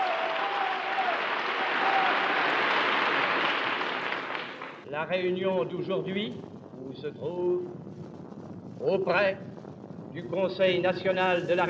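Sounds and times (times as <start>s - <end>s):
hall audience standing and applauding at a 1944 patriotic meeting at Chaillot: 0.0s - 4.8s
crowd noise: 0.0s - 4.9s
speech: 5.0s - 8.1s, 8.8s - 9.5s, 10.1s - 11.6s.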